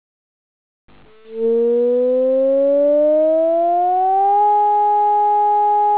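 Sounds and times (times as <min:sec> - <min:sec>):
all-clear sirens: 0:01.2 - 0:05.8.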